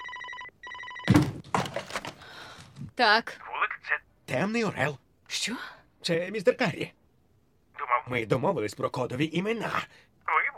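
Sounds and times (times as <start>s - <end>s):
telephone ringing: 0.0s - 1.4s
speech: 3.0s - 3.4s, 4.3s - 7.0s, 8.1s - 10.1s.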